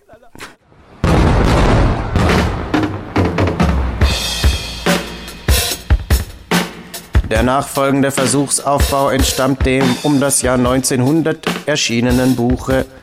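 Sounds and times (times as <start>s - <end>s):
firecracker exploding: 0.7s - 5.8s
speech: 7.3s - 13.0s.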